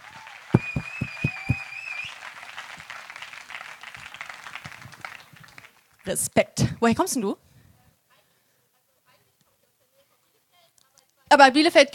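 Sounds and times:
small audience clapping: 0:00.0 - 0:06.0
whistle: 0:00.6 - 0:02.2
speech: 0:06.1 - 0:07.4, 0:11.4 - 0:11.9.

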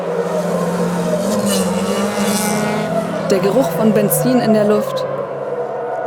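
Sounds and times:
racing car engines roaring: 0:00.0 - 0:06.0
speech: 0:03.3 - 0:05.1.

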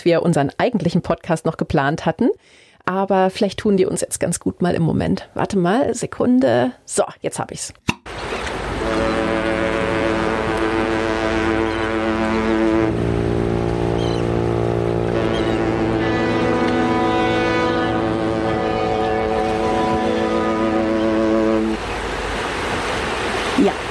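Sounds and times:
speech: 0:00.0 - 0:09.3
steady wash of harbor water: 0:08.1 - 0:23.8
deep sustained ship horns in a harbor: 0:08.6 - 0:22.0
harbor activity: 0:12.6 - 0:23.8.

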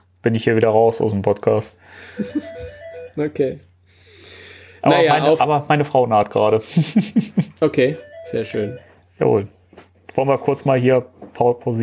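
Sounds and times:
speech: 0:00.2 - 0:03.7, 0:04.8 - 0:09.6, 0:10.2 - 0:11.8
laughter: 0:02.0 - 0:02.8, 0:06.6 - 0:08.0
phone melodic ringtone: 0:02.2 - 0:03.3, 0:07.8 - 0:09.0.

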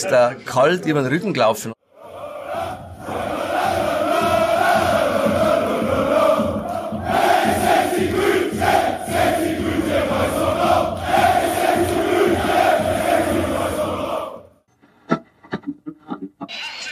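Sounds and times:
speech: 0:00.0 - 0:01.8
large stadium crowd of visiting football fans chanting in unison: 0:01.8 - 0:14.6.

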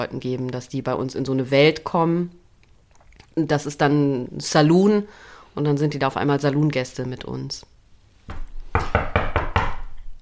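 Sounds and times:
speech: 0:00.0 - 0:02.4, 0:03.4 - 0:07.7
sharp knocks on a door: 0:08.3 - 0:10.0.

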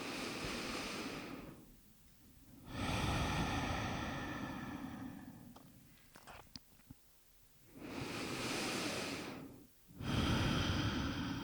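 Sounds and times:
slow deep breathing in and out during a guided breathing exercise: 0:00.0 - 0:01.7, 0:02.5 - 0:06.0, 0:07.7 - 0:11.4.

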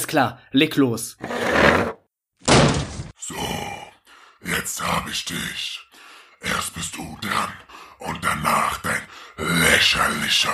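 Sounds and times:
speech: 0:00.1 - 0:01.9, 0:04.7 - 0:10.5
chair dragged across the floor away from a door: 0:01.2 - 0:02.0.

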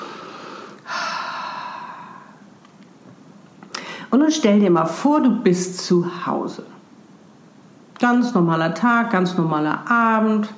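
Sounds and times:
person breathing in deeply and out through the mouth: 0:00.0 - 0:02.5, 0:03.7 - 0:04.1
speech: 0:04.1 - 0:06.7, 0:08.0 - 0:10.5.

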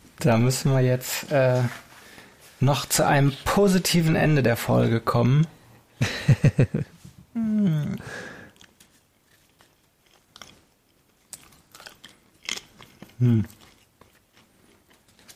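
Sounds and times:
speech: 0:00.2 - 0:01.8, 0:02.6 - 0:08.3, 0:13.2 - 0:13.6
laughter: 0:06.0 - 0:06.9
person chewing thin crunchy baking wafers: 0:08.0 - 0:15.3.

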